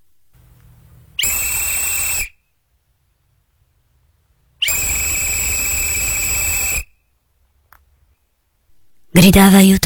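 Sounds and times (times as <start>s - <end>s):
loud shrill farewell whistle blasts: 1.2s - 2.5s, 4.6s - 7.1s
speech: 9.2s - 9.8s.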